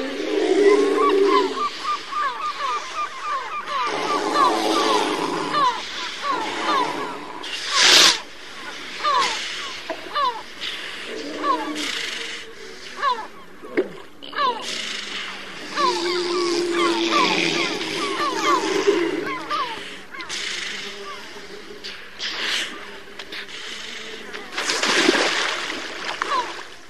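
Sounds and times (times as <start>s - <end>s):
large seals on a beach grunting and snoring: 0.0s - 24.6s
splashing water: 24.5s - 26.8s.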